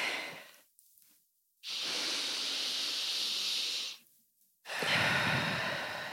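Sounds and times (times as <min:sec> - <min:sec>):
person inhaling deeply as a breathing demonstration: 0:01.6 - 0:04.0, 0:04.7 - 0:06.1.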